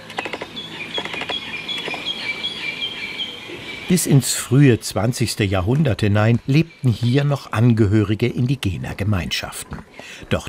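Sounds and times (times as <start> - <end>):
birds singing in a forest of giant Douglas firs: 0.0 - 8.2
wind rustling through treetops: 0.0 - 10.4
speech: 3.9 - 10.4.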